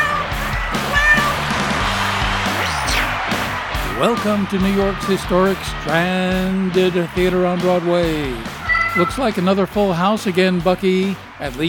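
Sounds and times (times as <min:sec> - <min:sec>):
cat meowing: 0:00.0 - 0:01.5, 0:08.6 - 0:09.1
laughter: 0:00.0 - 0:11.6
rhythmic music with thumping bass line: 0:00.0 - 0:11.6
speech: 0:04.0 - 0:11.6.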